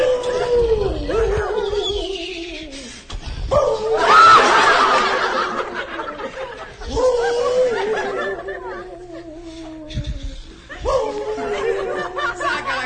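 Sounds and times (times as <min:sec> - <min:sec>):
man's voice imitating a wolf howling: 0:00.0 - 0:02.8, 0:03.5 - 0:04.4, 0:06.8 - 0:12.4
man's chuckling rasp: 0:04.8 - 0:12.7.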